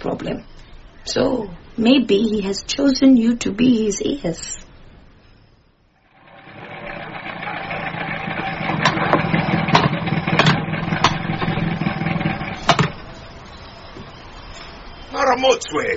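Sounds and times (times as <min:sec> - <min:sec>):
speech: 0:00.0 - 0:04.7, 0:15.4 - 0:15.9
van engine idling: 0:06.1 - 0:13.5
sharp irregular knocks or clanks: 0:07.9 - 0:13.1.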